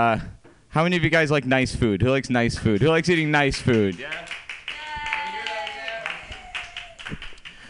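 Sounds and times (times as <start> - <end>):
speech: 0.0 - 4.4
crowd applauding with dense overlapping claps: 2.8 - 7.6
several voices whooping and cheering: 4.7 - 7.4.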